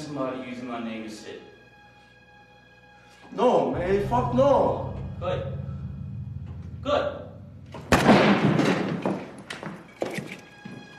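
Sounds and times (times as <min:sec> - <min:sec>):
speech: 0:00.1 - 0:01.6, 0:03.3 - 0:05.6, 0:06.8 - 0:07.2
gunshot in a played recording of a tense street confrontation: 0:07.8 - 0:09.2.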